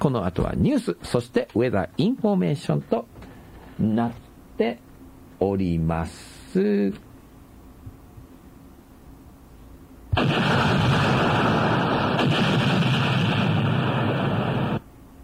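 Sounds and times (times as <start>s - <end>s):
speech: 0.0s - 3.1s, 3.8s - 4.8s, 5.4s - 7.1s
explosion sound effect: 10.2s - 14.8s.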